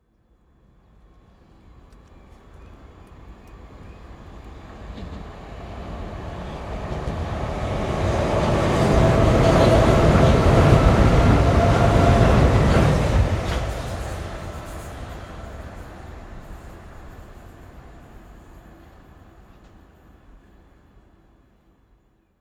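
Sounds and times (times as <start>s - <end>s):
electric overground train passing under footbridge: 0.5s - 21.5s.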